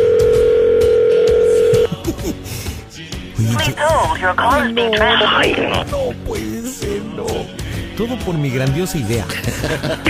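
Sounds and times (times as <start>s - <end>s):
telephone tone while waiting on the line: 0.0s - 1.9s
laughter: 1.8s - 2.5s, 9.3s - 10.0s
voices: 3.4s - 6.2s
speech: 3.6s - 10.0s.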